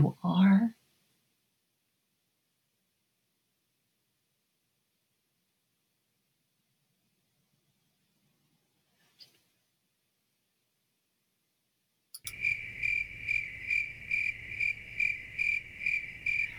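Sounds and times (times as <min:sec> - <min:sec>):
chorus of crickets chirping: 0:12.2 - 0:16.5.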